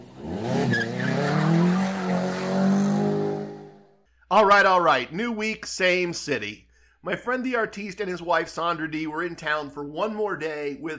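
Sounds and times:
car engine revving: 0:00.0 - 0:03.9
car tires squealing: 0:00.1 - 0:03.6
speech: 0:04.3 - 0:10.9.

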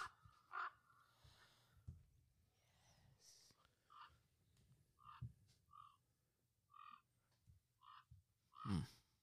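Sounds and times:
flock of ravens cawing: 0:00.0 - 0:01.0, 0:06.7 - 0:07.1, 0:07.8 - 0:08.9.

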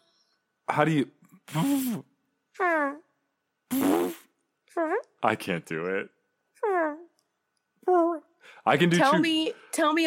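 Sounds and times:
speech: 0:00.7 - 0:03.0, 0:04.7 - 0:06.9, 0:07.9 - 0:10.0
person imitating a fart with their mouth: 0:01.5 - 0:02.1, 0:03.7 - 0:04.4.

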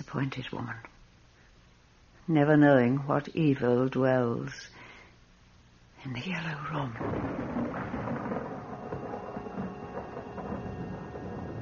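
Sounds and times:
speech: 0:00.1 - 0:01.0, 0:02.3 - 0:04.8, 0:06.0 - 0:07.6
thunder rumbling before a coming storm: 0:06.9 - 0:11.5
hissing rain-like wash: 0:07.0 - 0:11.5.

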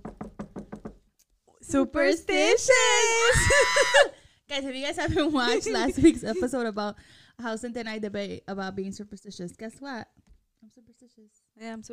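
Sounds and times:
knocking on wood: 0:00.0 - 0:01.1
speech: 0:01.7 - 0:10.1, 0:11.2 - 0:11.9.

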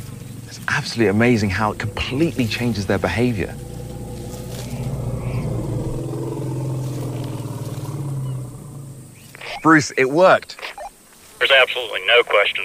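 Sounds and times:
herd of elephants vocalizing with deep rumbling calls: 0:00.0 - 0:10.0
low drone: 0:00.0 - 0:10.0
speech: 0:00.5 - 0:03.7, 0:09.6 - 0:10.8, 0:11.4 - 0:12.6.

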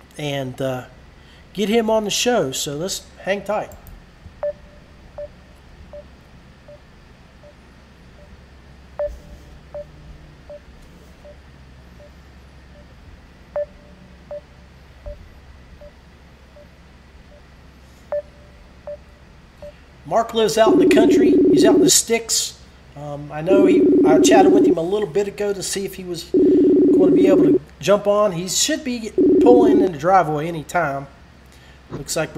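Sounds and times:
faint low hum: 0:00.0 - 0:30.7
speech: 0:00.2 - 0:03.8, 0:20.3 - 0:31.2, 0:31.9 - 0:32.3
telephone dialing tones of short electronic beeps: 0:20.6 - 0:21.9, 0:23.5 - 0:24.8, 0:26.4 - 0:27.6, 0:29.2 - 0:29.9.

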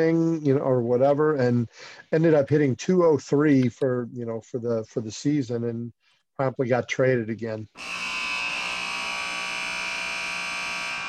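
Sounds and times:
speech: 0:00.0 - 0:08.2
final buzzer sounding: 0:07.8 - 0:11.0.

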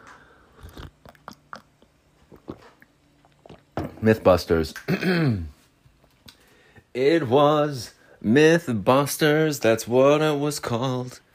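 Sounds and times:
person sipping coffee: 0:00.1 - 0:03.8
wet mouth and swallowing noises: 0:00.5 - 0:03.9
speech: 0:04.0 - 0:05.6, 0:07.0 - 0:11.2.

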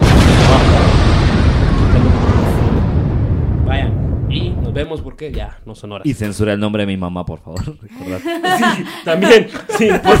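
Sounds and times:
explosion sound effect rumbling: 0:00.0 - 0:05.8
speech: 0:05.2 - 0:10.1
laughter: 0:08.0 - 0:10.1.

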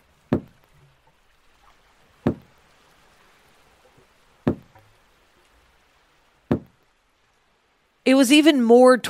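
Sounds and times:
faint watery background: 0:00.0 - 0:09.0
hollow clunking knocks against a boat's side: 0:00.3 - 0:00.9, 0:02.2 - 0:02.5, 0:04.4 - 0:04.9, 0:06.5 - 0:06.8
speech: 0:08.1 - 0:09.0.

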